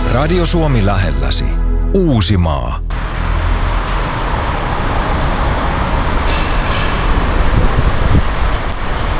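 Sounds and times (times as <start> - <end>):
speech: 0.1 - 2.9
train rumbling past a parking garage beside Myyrmäki railway station: 2.9 - 9.1.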